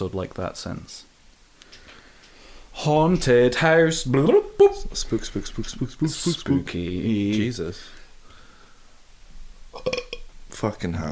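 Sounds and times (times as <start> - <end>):
speech: 0.0 - 1.1, 2.8 - 8.0, 9.8 - 10.0, 10.6 - 11.1
person burping after eating a lot of chips: 9.7 - 10.3.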